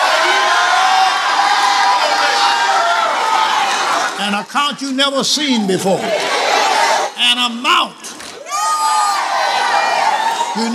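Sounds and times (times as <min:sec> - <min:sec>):
audience shouting and cheering: 0:00.0 - 0:10.7
speech: 0:04.3 - 0:06.4, 0:07.2 - 0:08.1, 0:10.6 - 0:10.7.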